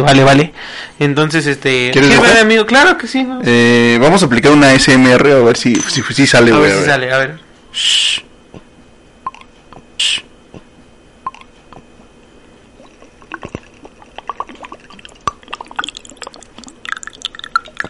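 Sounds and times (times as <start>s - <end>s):
speech: 0.0s - 8.3s
liquor poured into a small shot glass: 12.8s - 17.8s.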